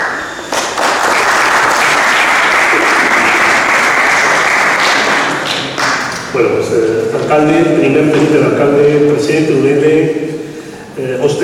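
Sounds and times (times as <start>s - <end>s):
audience applause: 0.0s - 6.2s
speech: 6.4s - 11.4s.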